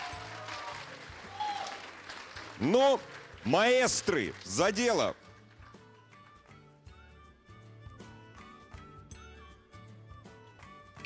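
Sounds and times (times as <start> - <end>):
cheers and whistles: 0.0 - 1.9
large audience applauding at a summer studio stage: 0.0 - 5.6
speech: 2.6 - 5.2.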